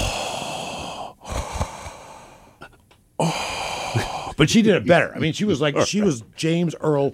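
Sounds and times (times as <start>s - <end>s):
voice imitating heavy raspy hissing breathing: 0.0s - 4.4s
speech: 4.4s - 7.1s.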